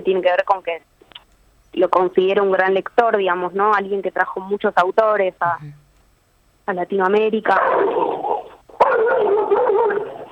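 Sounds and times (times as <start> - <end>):
speech: 0.0 - 0.9, 1.8 - 5.8, 6.7 - 8.1
dog barking and yelping: 7.5 - 10.3.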